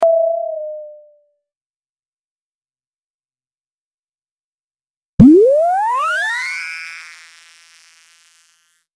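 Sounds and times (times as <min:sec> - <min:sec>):
cartoon bubble effect: 0:05.2 - 0:06.8
cartoon charge effect: 0:05.2 - 0:07.4.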